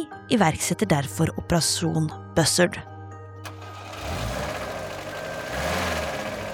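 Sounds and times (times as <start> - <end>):
speech: 0.0 - 2.9
car engine running as the car is driven uphill: 3.5 - 6.5.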